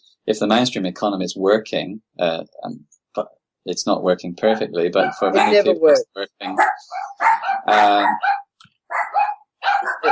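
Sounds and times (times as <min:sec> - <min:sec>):
speech: 0:00.2 - 0:08.4
dogs barking: 0:04.4 - 0:05.8, 0:06.4 - 0:10.0.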